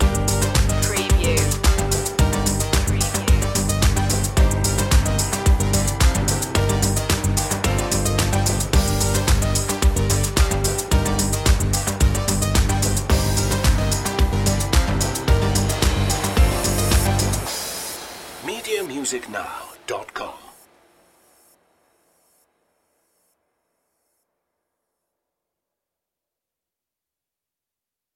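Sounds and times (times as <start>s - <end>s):
corporate machine loop end: 0.0s - 20.6s.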